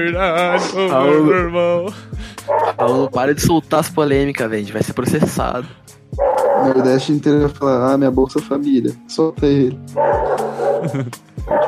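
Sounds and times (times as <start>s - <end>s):
speech: 0.0s - 11.6s
dog barking loudly with sharp yelping barks: 2.5s - 2.8s, 6.2s - 7.1s, 10.0s - 10.9s, 11.5s - 11.6s.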